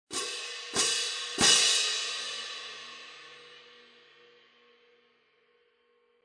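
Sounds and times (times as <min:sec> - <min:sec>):
18-inch symphonic medium heavy hand cymbals loud crash: 0:00.1 - 0:04.2.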